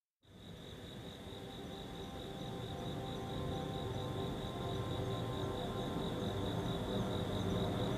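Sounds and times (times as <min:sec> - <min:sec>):
crickets trilling outside at night: 0:00.2 - 0:07.9.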